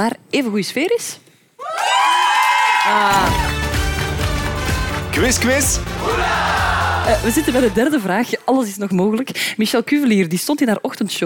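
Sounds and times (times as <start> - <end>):
speech: 0.0 - 1.3, 2.9 - 3.6, 5.2 - 11.2
crowd of supporters cheering and shouting: 1.6 - 4.0, 5.2 - 8.0.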